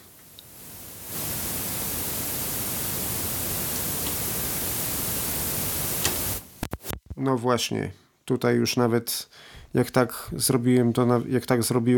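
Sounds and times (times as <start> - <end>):
tape deck amplifier hiss at maximum volume: 0.0 - 7.2
sharp clicks and thumps: 6.0 - 7.2
speech: 7.2 - 11.9.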